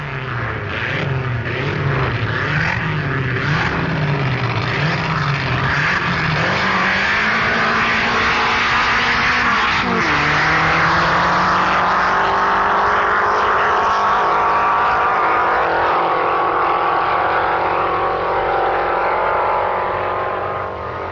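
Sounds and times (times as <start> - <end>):
two Allard Dragon dragster cars roaring down a drag strip: 0.0 - 21.0.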